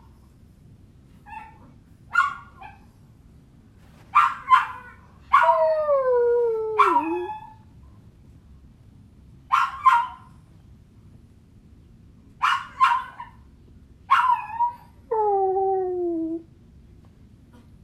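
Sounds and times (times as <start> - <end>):
dog yelps: 1.2 - 2.8, 4.1 - 5.8, 6.7 - 7.6, 9.5 - 10.3, 12.4 - 13.4, 14.1 - 15.3
dog whining: 4.8 - 7.6, 14.2 - 16.4.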